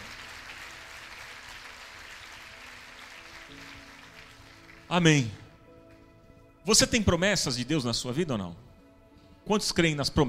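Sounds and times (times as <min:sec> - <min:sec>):
audience applauding: 0:00.0 - 0:05.1
speech: 0:04.9 - 0:05.4, 0:06.6 - 0:08.7, 0:09.4 - 0:10.2.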